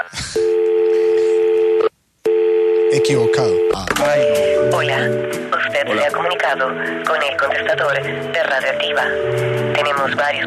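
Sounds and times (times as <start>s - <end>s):
telephone tone as a long-distance number is dialed: 0.4s - 3.8s
speech: 2.9s - 10.4s.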